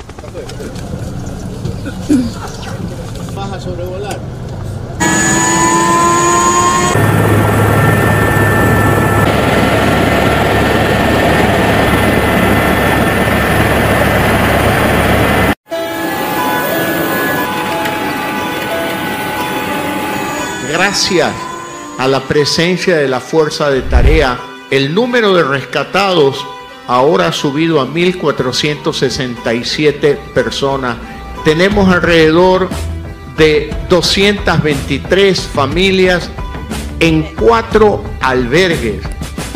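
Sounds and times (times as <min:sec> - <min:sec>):
helicopter rotor and engine roaring during flight: 0:00.0 - 0:23.2
speech: 0:01.9 - 0:04.4, 0:20.9 - 0:21.4, 0:22.0 - 0:36.4, 0:37.0 - 0:39.1.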